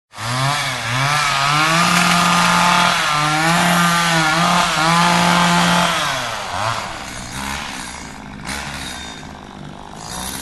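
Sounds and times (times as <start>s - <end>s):
chainsaw: 0.1s - 10.4s.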